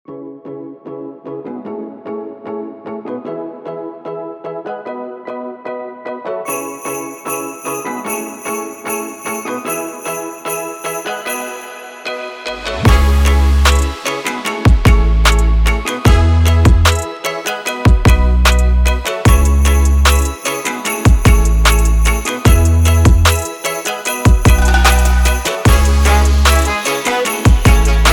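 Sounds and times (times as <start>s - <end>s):
Christmas hip hop background music: 6.5s - 28.1s.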